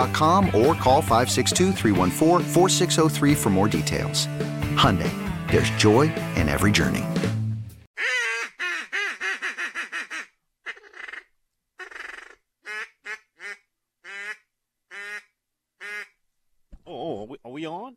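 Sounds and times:
speech: 0.0s - 7.3s
duck call blown: 8.0s - 16.2s.

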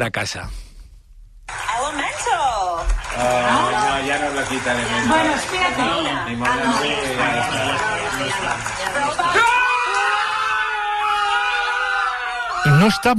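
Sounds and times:
speech: 0.0s - 0.6s, 2.2s - 9.6s, 12.6s - 13.1s
group of people shouting and cheering: 1.5s - 13.1s
sustained high yell: 9.2s - 13.1s.

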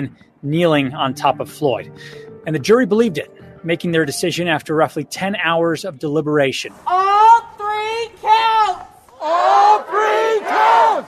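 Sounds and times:
speech: 0.0s - 7.2s
crowd cheering and shouting after verdict: 8.2s - 11.0s.

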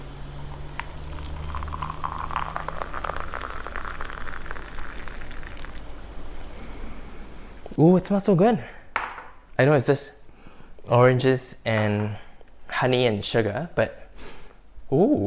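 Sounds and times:
hot boiled water pouring into a cup: 0.4s - 6.0s
speech: 7.8s - 8.8s, 9.6s - 10.2s, 10.9s - 12.2s, 12.8s - 14.3s, 14.9s - 15.2s.

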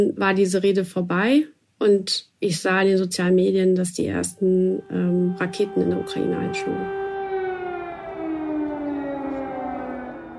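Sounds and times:
speech: 0.0s - 7.0s
air raid siren wailing across Kyiv Ukraine during the Russian attack: 4.3s - 10.3s.

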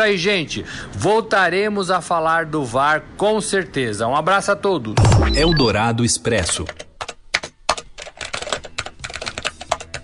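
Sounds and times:
speech: 0.0s - 6.9s
rapid keyboard typing: 6.5s - 10.0s.

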